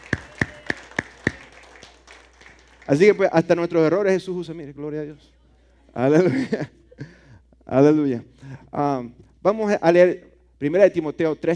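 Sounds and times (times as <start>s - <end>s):
hand claps during a church service: 0.0s - 3.2s
speech: 2.9s - 5.4s, 6.0s - 11.5s.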